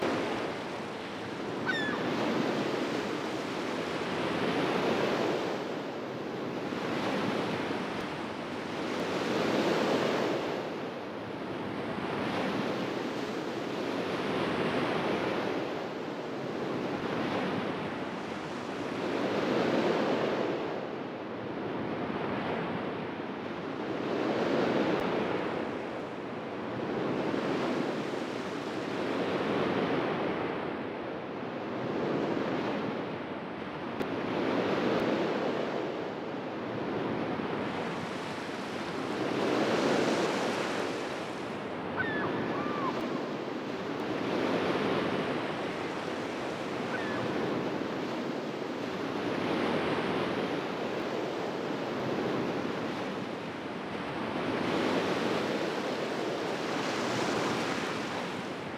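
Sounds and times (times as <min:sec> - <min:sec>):
beach ambience: 0:00.0 - 0:58.7.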